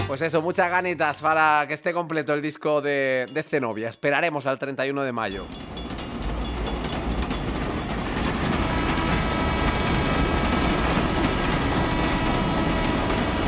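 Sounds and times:
speech: 0.1 - 5.7
long-distance train rumbling past: 5.3 - 13.4.

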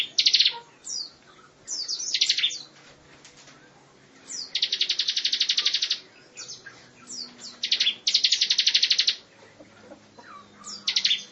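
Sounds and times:
lovebird delivering long buzzy trills: 0.0 - 2.7, 4.2 - 11.3
lovebird softer chirps and short whistled notes: 1.8 - 2.7, 4.3 - 9.2, 10.6 - 11.3.

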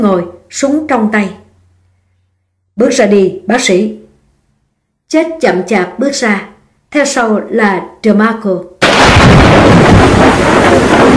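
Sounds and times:
speech: 0.0 - 1.4, 2.8 - 4.0, 5.1 - 11.0
thunderclap: 8.8 - 11.1.

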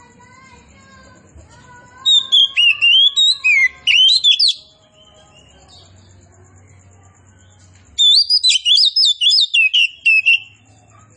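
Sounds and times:
Oriental magpie-robin of the kacer poci form singing loudly: 1.9 - 6.2, 7.4 - 10.9.

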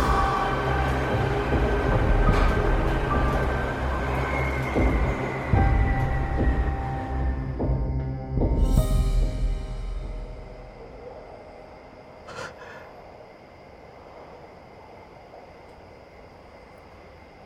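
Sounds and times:
subway train rails rattling: 0.0 - 7.6
subway train running: 0.0 - 17.4.

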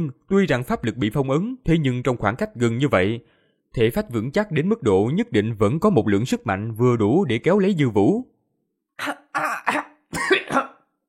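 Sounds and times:
speech: 0.0 - 8.3, 9.0 - 9.8
man choking in a violent coughing fit: 9.0 - 11.0.

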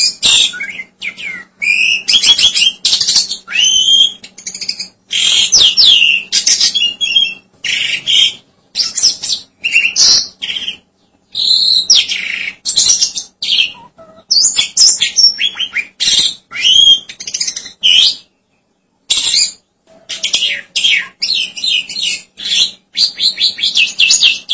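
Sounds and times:
faint steady low hum: 0.0 - 24.5
starling singing: 0.0 - 24.5.

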